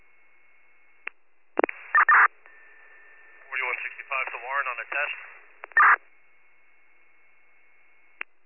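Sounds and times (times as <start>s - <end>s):
faint steady radio tone: 0.0s - 8.4s
radio transmission click: 1.0s - 2.6s, 3.7s - 6.0s
garbled radio transmission crackling bursts: 1.6s - 6.0s
speech: 4.8s - 5.3s.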